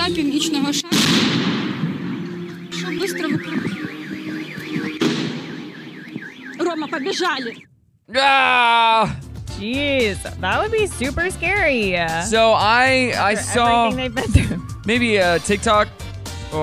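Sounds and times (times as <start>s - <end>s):
woman being interviewed: 0.0s - 1.2s, 2.5s - 4.4s, 6.5s - 7.6s, 13.3s - 14.5s
speech: 0.1s - 1.5s, 6.8s - 16.6s
RPG anti-tank weapon firing bang at a fair: 0.9s - 2.6s, 4.8s - 5.8s
car alarm wailing: 1.9s - 7.7s.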